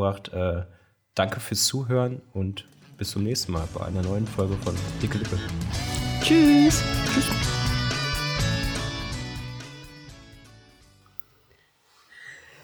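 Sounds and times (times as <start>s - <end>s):
speech: 0.0s - 7.6s
music: 2.6s - 11.2s.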